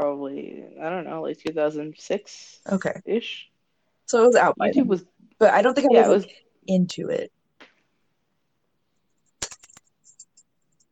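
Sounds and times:
speech: 0.4s - 3.5s, 4.1s - 7.4s
keyboard typing: 9.2s - 10.9s.

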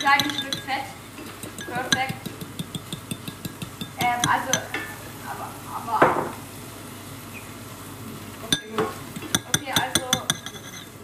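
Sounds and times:
speech: 0.0s - 1.0s
utensils clinking against a pan: 0.0s - 5.0s, 8.5s - 11.0s
bacon frying in a pan: 0.0s - 11.0s.

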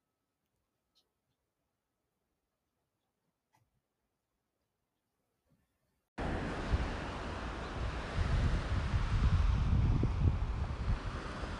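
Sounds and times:
ocean waves rolling in with surf: 6.2s - 11.5s.

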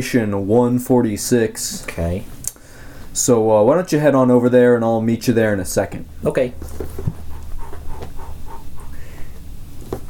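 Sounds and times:
speech: 0.0s - 2.4s, 3.2s - 7.2s
pig grunting and panting while running and biting a leg: 7.1s - 9.2s.

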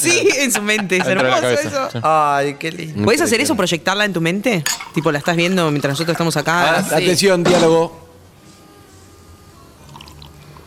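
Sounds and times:
speech: 0.0s - 8.1s
laughter: 0.1s - 2.2s
water pouring: 4.7s - 6.6s, 9.8s - 10.5s.

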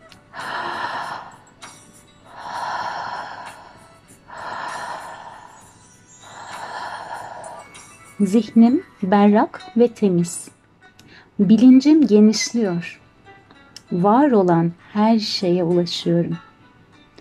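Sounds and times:
slow deep breathing in and out through the mouth: 0.3s - 8.2s
speech: 8.2s - 10.6s, 11.4s - 13.0s, 13.9s - 16.5s.

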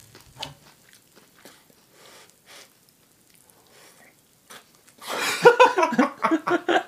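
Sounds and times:
crunchy chewing of potato snack sticks: 0.0s - 5.1s
laughter: 5.1s - 6.8s.

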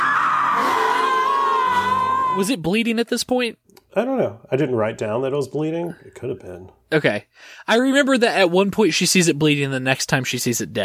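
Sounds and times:
woman screaming: 0.0s - 2.4s
speech: 2.4s - 10.8s.

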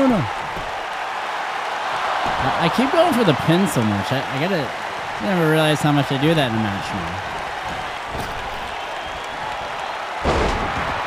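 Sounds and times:
crowd roar in a wrestling video game: 0.0s - 11.0s
speech: 0.1s - 0.4s, 2.6s - 7.4s
heavy side slam thud in a wrestling video game: 10.2s - 11.0s.

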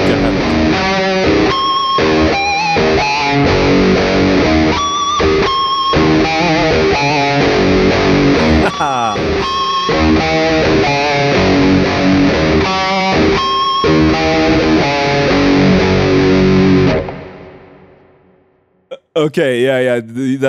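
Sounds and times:
laughter: 0.0s - 0.6s, 8.4s - 9.6s
loud heavily distorted electric guitar playing a repeating descending riff: 0.0s - 18.4s
speech: 19.2s - 20.4s.

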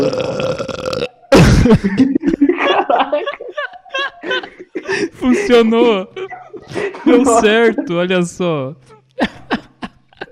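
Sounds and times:
long loud guttural burp: 0.0s - 1.8s
excited vocal reaction: 0.0s - 8.1s
laughter: 1.6s - 8.0s, 9.1s - 10.3s
speech: 1.7s - 2.3s, 5.5s - 6.2s, 7.1s - 8.9s.

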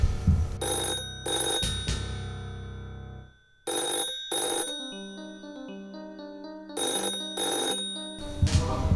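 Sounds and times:
bright electronic telephone ringtone: 0.6s - 2.0s, 3.2s - 8.5s.

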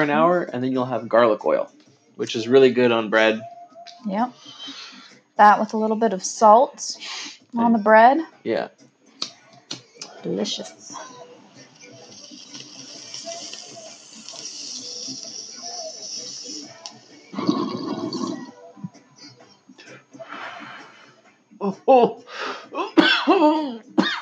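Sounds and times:
vocal sounds: 0.0s - 5.9s, 6.5s - 24.1s
speech: 0.0s - 8.9s, 10.2s - 11.1s, 21.6s - 22.3s, 23.3s - 23.9s
steady hiss: 11.8s - 17.3s
person clearing throat: 17.4s - 18.5s, 22.8s - 24.1s
person coughing in harsh raspy bursts: 22.8s - 24.1s.

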